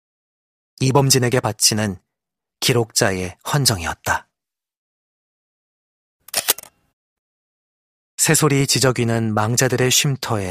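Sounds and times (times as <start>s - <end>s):
speech: 0.8s - 2.0s, 2.6s - 4.3s, 8.2s - 10.4s
camera shutter clicking at a graveside: 6.3s - 6.7s.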